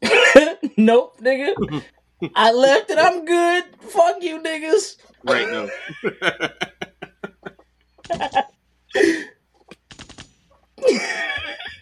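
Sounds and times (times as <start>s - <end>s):
speech: 0.8s - 6.8s, 8.1s - 9.4s, 10.8s - 11.8s
laughter: 1.6s - 1.9s, 5.3s - 8.4s, 10.8s - 11.8s
voice imitating gunshots: 1.6s - 1.9s.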